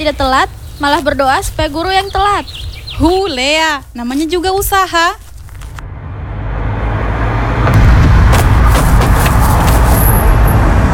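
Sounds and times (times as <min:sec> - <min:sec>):
speech: 0:00.0 - 0:05.2
car driving past with engine and road rumble: 0:05.8 - 0:10.9.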